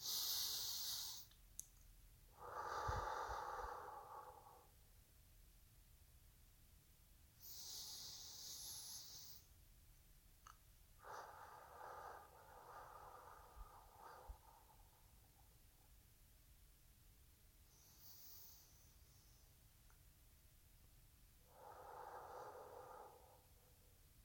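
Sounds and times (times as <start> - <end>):
slow deep breaths during a guided relaxation: 0.0 - 1.4, 2.3 - 4.8, 7.4 - 9.6, 11.0 - 16.1, 17.6 - 19.7, 21.4 - 24.2.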